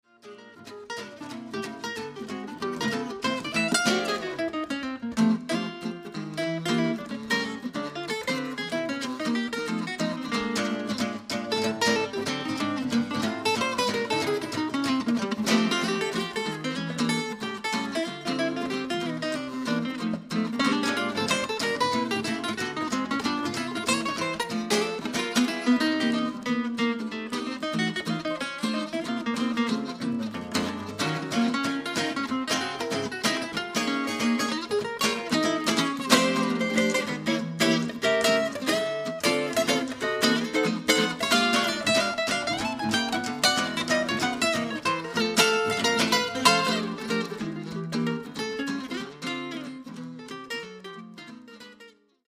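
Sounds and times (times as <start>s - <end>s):
Gibson L-4 guitar playing: 0.0s - 52.2s.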